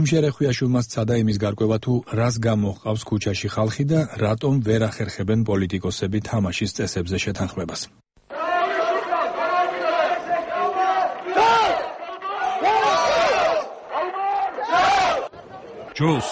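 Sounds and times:
speech: 0.0 - 8.0, 16.0 - 16.3
crowd chanting at a protest rally: 8.3 - 16.3.

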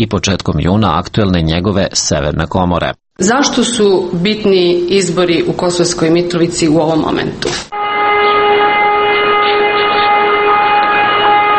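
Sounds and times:
speech: 0.0 - 7.8
civil defense siren wailing: 7.7 - 11.5.

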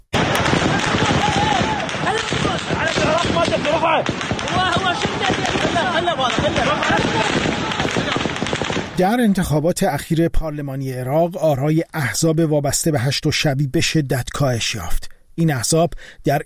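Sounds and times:
gunshots fired into the air: 0.0 - 9.4
chaotic crowd shouting: 0.2 - 8.7
speech: 9.0 - 16.4.

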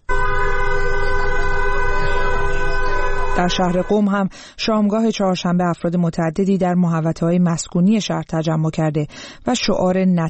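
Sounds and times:
passing car horn honking in support of a street protest in Tehran: 0.0 - 4.0
faint traffic rumble in Tajrish Square, Tehran, Iran: 0.1 - 4.0
speech: 3.4 - 10.2.

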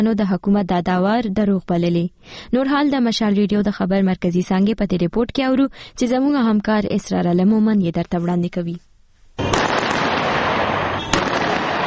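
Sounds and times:
speech: 0.0 - 9.5
celebratory gunfire in Libya: 9.4 - 11.8.

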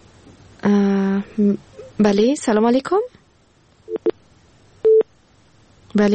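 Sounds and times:
speech: 1.4 - 3.2, 5.9 - 6.1
telephone line tone after a caller to a radio call-in show is disconnected: 3.9 - 4.1, 4.8 - 5.1.

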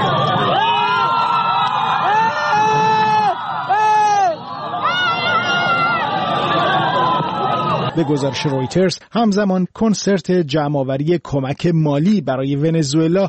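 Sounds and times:
large crowd of supporters cheering and shouting as their leader boards a helicopter: 0.0 - 8.9
speech: 8.0 - 13.2.

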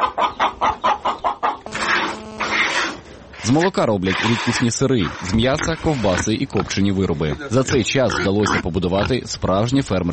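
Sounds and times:
chicken clucking on a small farm near Kostiantynivka, Donetsk region, Ukraine: 0.0 - 3.0
chicken cackling on a small farm near Kostiantynivka, Donetsk region, Ukraine: 0.0 - 3.6
speech: 3.4 - 10.1.

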